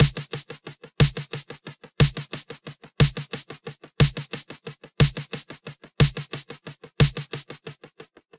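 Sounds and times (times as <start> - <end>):
snare drum chaotic triplets with feedback echo: 0.0 - 2.4, 3.0 - 5.4, 6.0 - 6.4, 7.0 - 7.4.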